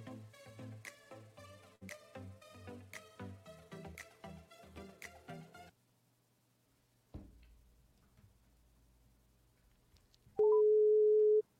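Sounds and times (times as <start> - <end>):
phone call ringing tone as electronic melody: 10.4 - 11.4.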